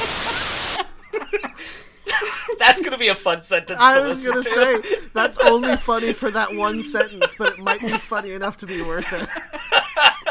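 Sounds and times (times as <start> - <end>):
loud flat burst of hissing white noise: 0.0 - 0.8
laughter: 0.0 - 2.9, 3.8 - 10.3
speech: 2.6 - 10.1.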